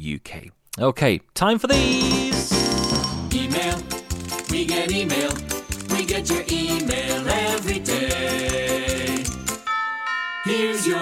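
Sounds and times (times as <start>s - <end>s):
speech: 0.0s - 2.6s, 4.5s - 5.5s, 6.1s - 9.4s, 10.4s - 11.0s
denser musical sound: 1.7s - 9.8s
doorbell-style ding-dong chime: 1.8s - 3.5s, 9.5s - 11.0s.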